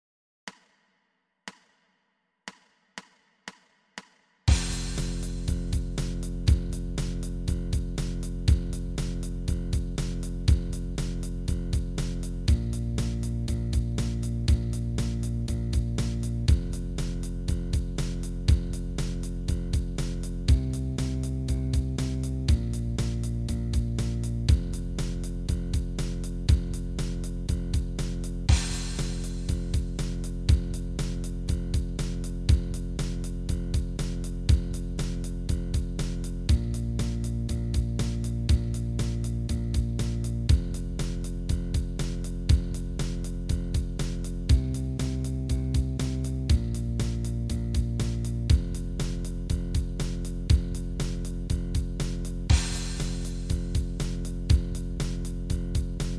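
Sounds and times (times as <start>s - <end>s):
blues bass line: 4.5s - 56.1s.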